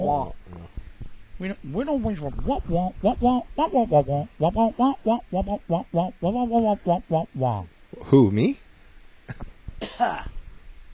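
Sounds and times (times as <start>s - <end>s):
speech: 0.0s - 0.5s, 1.4s - 8.6s, 9.3s - 10.3s
throat clearing: 9.3s - 10.4s.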